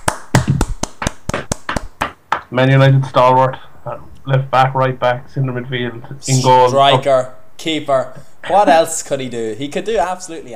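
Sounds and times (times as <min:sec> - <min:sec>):
handclaps: 0:00.0 - 0:02.5
speech: 0:02.5 - 0:10.5.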